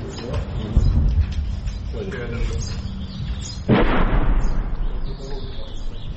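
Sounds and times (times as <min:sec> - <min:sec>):
steady low rumble: 0:00.6 - 0:06.1
artillery fire boom during fighting around a town: 0:03.6 - 0:06.1.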